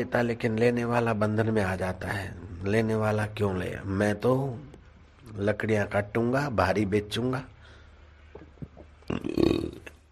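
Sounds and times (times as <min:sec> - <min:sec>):
speech: 0:00.0 - 0:04.7, 0:05.3 - 0:07.5, 0:09.1 - 0:09.8
person imitating a croaky burp: 0:08.7 - 0:10.1.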